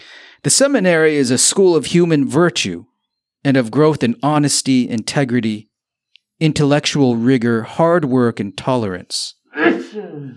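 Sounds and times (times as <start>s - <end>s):
speech: 0.4s - 5.7s, 6.4s - 10.3s
sneeze: 9.6s - 10.3s.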